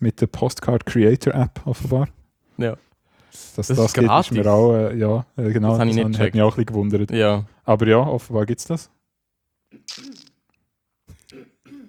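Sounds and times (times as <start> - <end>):
speech: 0.0 - 9.0
person clearing throat: 9.7 - 10.3, 11.1 - 11.8.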